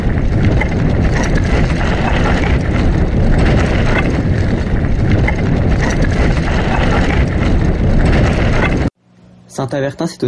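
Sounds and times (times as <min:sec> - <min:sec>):
wind roaring over microphone during fast mountain bike descent in Saint-Avertin France: 0:00.0 - 0:08.9
faint mechanical rattles of mountain bike: 0:00.0 - 0:09.6
speech: 0:09.6 - 0:10.2.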